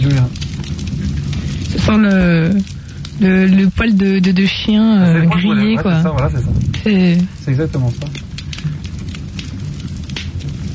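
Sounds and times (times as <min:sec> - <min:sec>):
wood logs crackling in a fireplace in the Ardèche: 0:00.0 - 0:10.7
speech: 0:01.9 - 0:08.3.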